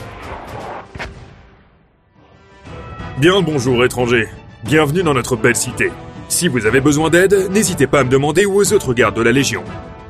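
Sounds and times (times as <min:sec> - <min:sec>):
mortar fire in a video game: 0:00.0 - 0:02.1
speech: 0:03.2 - 0:09.9.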